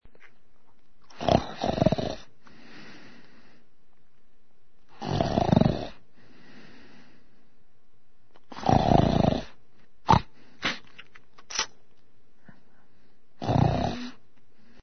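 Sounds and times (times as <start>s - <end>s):
person snoring: 1.2s - 3.1s, 4.9s - 6.0s, 8.5s - 10.4s, 13.4s - 14.2s.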